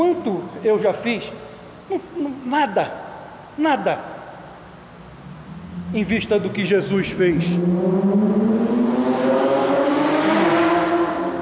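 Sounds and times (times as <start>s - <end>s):
speech: 0.0s - 4.2s, 5.9s - 9.6s
car engine revving: 5.0s - 11.4s.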